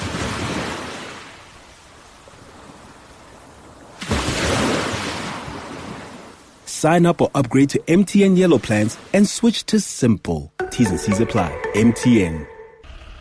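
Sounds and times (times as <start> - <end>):
ocean waves breaking: 0.0 - 6.7
speech: 6.8 - 12.5.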